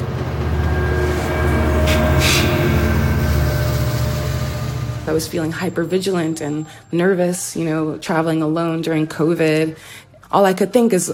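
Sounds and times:
Amtrak train to New York running on rails: 0.0s - 6.9s
speech: 5.1s - 11.1s.

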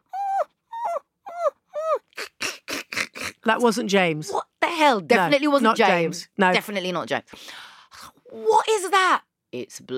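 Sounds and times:
dog whimpering outside a door: 0.0s - 3.4s
speech: 3.4s - 7.6s, 8.4s - 9.9s.

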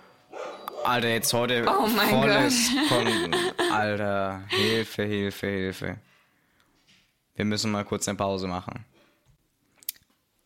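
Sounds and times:
household dog barking: 0.3s - 1.0s
speech: 0.8s - 6.1s, 7.4s - 8.9s
laughter: 1.7s - 4.9s.

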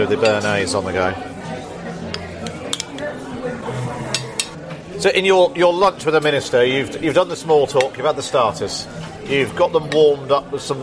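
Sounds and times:
speech: 0.0s - 1.4s, 5.0s - 10.8s
low voices talking: 0.0s - 10.8s
cutlery clinking and scraping on a plate at a lunch table: 2.1s - 3.0s, 4.1s - 4.6s.

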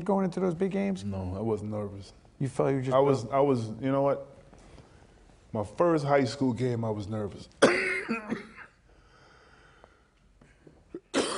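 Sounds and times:
speech: 0.0s - 4.3s, 5.5s - 8.5s
harsh cough: 7.6s - 8.8s, 10.9s - 11.3s
faint breathing: 8.8s - 10.8s.

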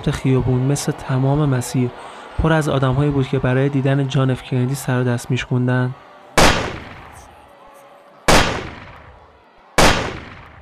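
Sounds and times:
speech: 0.0s - 6.0s
rifle gunshots with long decaying echo: 6.4s - 7.2s, 8.3s - 9.0s, 9.8s - 10.6s.

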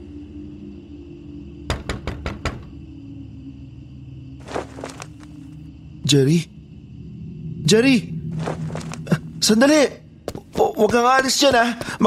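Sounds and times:
knocking on the glass wall of a convenience store: 1.7s - 2.7s
speech: 6.1s - 6.6s, 7.7s - 8.6s, 9.5s - 10.0s, 10.8s - 12.0s.

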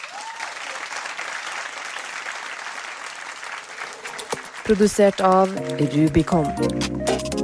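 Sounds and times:
audience applause of many hands clapping: 0.0s - 5.8s
speech: 4.7s - 7.3s.

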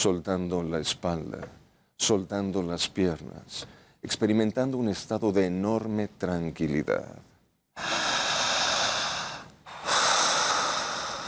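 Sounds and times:
speech: 0.0s - 8.0s
slow deep resting breath during relaxation: 7.8s - 11.2s.

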